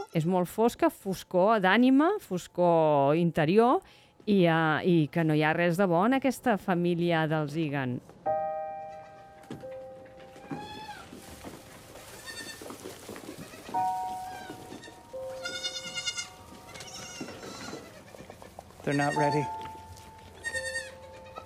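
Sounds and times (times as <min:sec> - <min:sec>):
speech: 0:00.1 - 0:08.5, 0:18.9 - 0:19.6
steady hiss of noise: 0:08.1 - 0:21.4
several goats bleating: 0:10.4 - 0:11.2, 0:12.1 - 0:19.6, 0:20.4 - 0:21.4.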